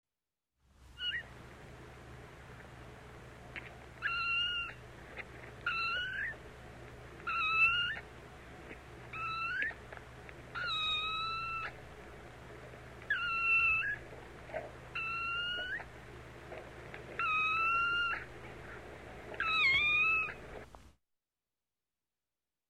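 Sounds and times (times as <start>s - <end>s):
kitten meowing squeakily: 1.0s - 1.3s, 4.0s - 4.8s, 5.6s - 6.4s, 7.2s - 8.1s, 9.1s - 9.8s, 10.5s - 11.8s, 13.1s - 14.0s, 15.0s - 15.9s, 17.2s - 18.3s, 19.4s - 20.4s.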